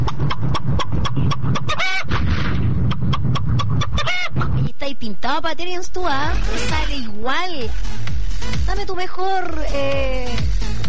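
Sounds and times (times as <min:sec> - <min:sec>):
person imitating a chicken clucking: 0:00.0 - 0:02.1, 0:02.8 - 0:04.7
speech: 0:05.4 - 0:10.7.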